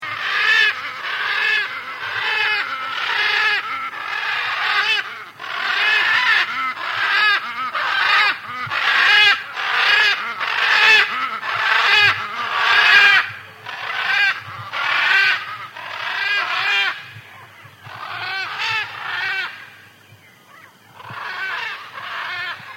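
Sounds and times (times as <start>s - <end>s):
Ara ararauna blue-and-yellow macaw calls: 0.0s - 22.7s.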